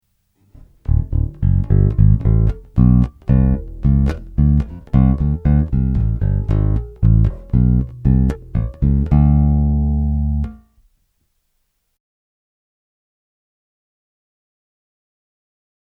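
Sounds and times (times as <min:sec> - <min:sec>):
guitar flat neck pickup tone through two-way active low impedance pickup: 0:00.6 - 0:10.7.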